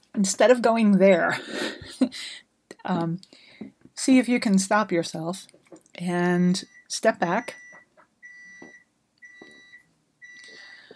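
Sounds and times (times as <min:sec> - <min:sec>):
speech: 0:00.2 - 0:07.6
kitchen timer beeping in sustained electronic tones: 0:06.6 - 0:10.7.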